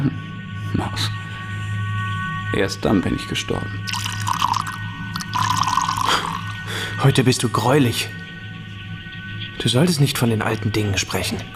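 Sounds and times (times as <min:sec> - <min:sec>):
speech: 0:00.0 - 0:00.2, 0:00.8 - 0:01.2, 0:02.5 - 0:04.4, 0:07.0 - 0:08.2, 0:09.6 - 0:11.5
drink pouring into a glass: 0:03.9 - 0:06.7.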